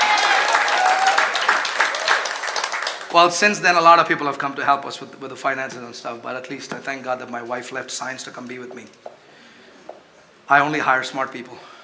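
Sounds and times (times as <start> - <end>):
room full of people clapping: 0.0 - 3.2
speech: 3.1 - 9.2, 10.5 - 11.7.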